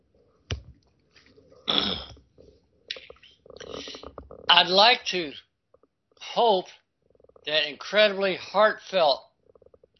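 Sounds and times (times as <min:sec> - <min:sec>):
person sipping water: 0:01.2 - 0:04.5
speech: 0:01.7 - 0:02.1, 0:04.6 - 0:05.4, 0:06.4 - 0:06.8, 0:07.4 - 0:09.3
breaths: 0:03.6 - 0:04.1.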